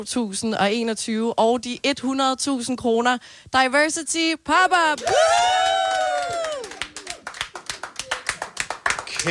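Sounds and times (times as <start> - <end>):
speech: 0.0 - 5.7
audience cheering: 5.0 - 9.1.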